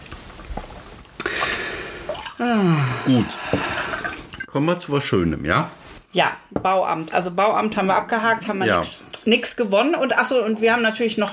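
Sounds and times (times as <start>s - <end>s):
wine glugging into a glass: 1.2s - 4.5s
speech: 2.4s - 3.7s, 4.5s - 11.3s.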